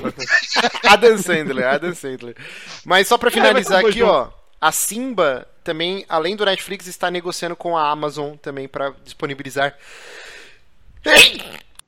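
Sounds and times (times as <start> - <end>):
laughter: 0.0 - 2.1, 2.7 - 4.1
speech: 0.0 - 10.3, 11.0 - 11.7
loud uncovered sneeze: 11.1 - 11.6.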